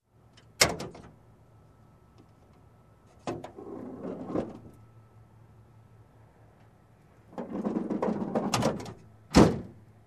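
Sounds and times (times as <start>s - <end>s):
engine hood opening and closing: 0.6s - 1.1s, 7.5s - 9.8s.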